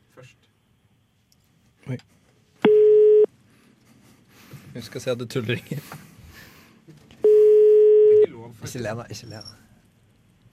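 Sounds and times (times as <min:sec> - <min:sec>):
faint noise: 0:00.0 - 0:10.5
speech: 0:00.2 - 0:00.4, 0:01.9 - 0:02.2, 0:04.8 - 0:06.1, 0:08.6 - 0:09.6
telephone ringing tone while placing a call: 0:02.7 - 0:03.3, 0:07.2 - 0:08.2.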